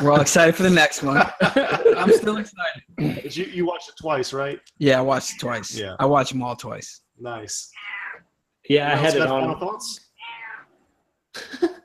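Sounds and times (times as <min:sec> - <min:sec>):
speech: 0:00.0 - 0:08.0, 0:08.7 - 0:10.0
laughter: 0:01.0 - 0:03.8, 0:09.0 - 0:09.6
cat meowing: 0:10.2 - 0:10.7.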